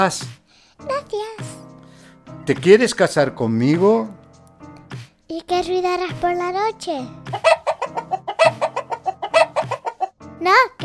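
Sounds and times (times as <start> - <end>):
speech: 0.0 - 1.5, 2.5 - 4.2, 5.3 - 7.6, 10.4 - 10.8
person imitating chicken clucking: 7.3 - 10.2.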